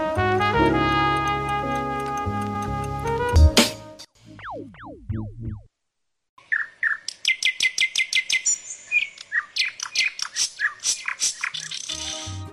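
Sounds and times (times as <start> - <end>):
rhythmic musical backing: 0.2 - 5.2
birds singing: 6.4 - 12.5.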